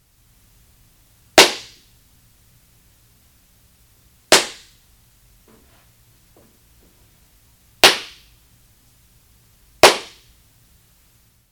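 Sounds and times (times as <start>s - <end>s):
library office ambience: 5.4s - 7.4s.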